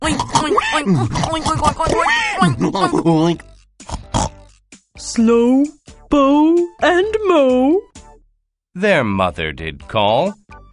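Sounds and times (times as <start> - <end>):
person imitating a pig with nasal grunting oinks: 0.0 - 4.5
speech: 0.1 - 1.7, 2.8 - 3.5, 5.1 - 7.9, 8.8 - 10.7.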